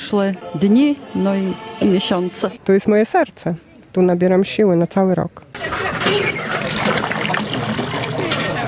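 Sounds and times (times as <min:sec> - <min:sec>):
speech: 0:00.1 - 0:05.5
spring water trickling into a container: 0:06.3 - 0:08.5.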